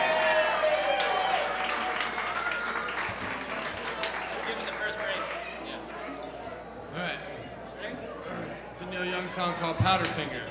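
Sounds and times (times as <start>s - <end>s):
crowd applauding to welcome a performer: 0.0s - 5.8s
faint voices and cheers: 0.0s - 9.8s
speech: 9.3s - 10.4s.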